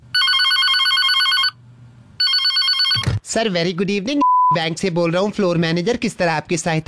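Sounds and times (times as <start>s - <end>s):
telephone ringing with a warbling electronic trill: 0.1s - 1.6s, 2.2s - 3.2s
speech: 3.3s - 6.8s.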